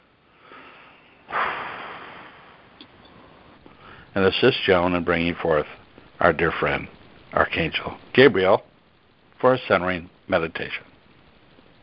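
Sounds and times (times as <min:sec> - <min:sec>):
people taking a deep breath together: 0:00.3 - 0:04.1
speech: 0:04.2 - 0:08.7, 0:09.4 - 0:10.9.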